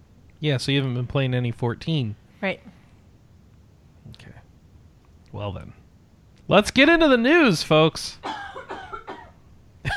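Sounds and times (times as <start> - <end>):
speech: 0.4 - 2.8, 5.3 - 5.8, 6.5 - 8.4
harsh heavy coughing: 8.2 - 9.9.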